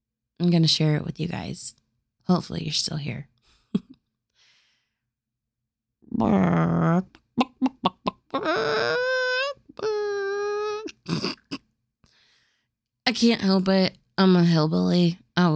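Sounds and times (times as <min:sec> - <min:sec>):
speech: 0:00.4 - 0:03.9, 0:06.1 - 0:07.7, 0:13.1 - 0:15.5
person imitating chicken clucks, squawks and crows: 0:06.2 - 0:11.6.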